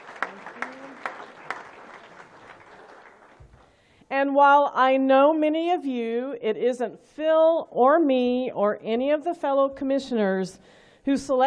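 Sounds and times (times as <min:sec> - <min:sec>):
scattered hand claps from an audience: 0:00.0 - 0:03.8
speech: 0:04.2 - 0:11.4.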